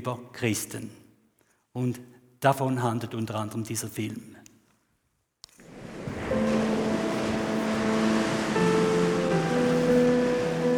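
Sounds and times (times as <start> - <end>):
speech: 0.0 - 1.0, 1.8 - 4.4
ocean waves and surf: 5.5 - 10.7
sustained droning tones: 6.2 - 10.7.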